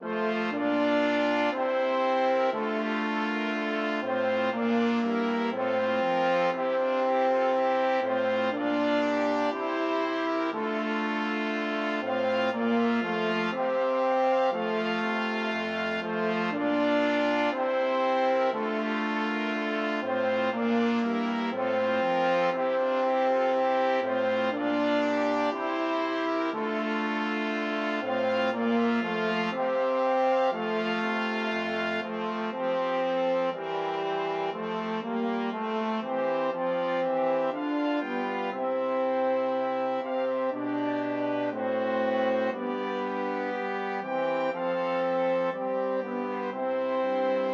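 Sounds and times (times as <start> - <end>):
march music: 0.0 - 47.5.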